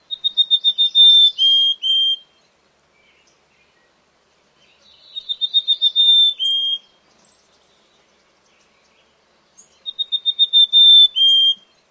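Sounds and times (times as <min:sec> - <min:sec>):
mountain chickadee songs: 0:00.0 - 0:11.8.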